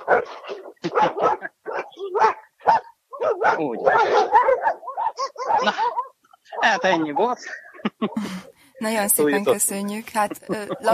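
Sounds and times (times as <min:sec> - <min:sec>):
dogs barking sharply, some yappy and whiny: 0:00.0 - 0:08.2
speech: 0:00.1 - 0:00.9, 0:03.6 - 0:04.4, 0:06.6 - 0:10.9
laughter: 0:00.8 - 0:01.5, 0:05.6 - 0:06.0, 0:06.7 - 0:08.5, 0:10.1 - 0:10.9.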